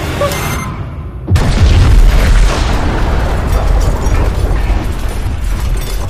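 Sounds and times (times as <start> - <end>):
explosion: 1.3 - 6.0.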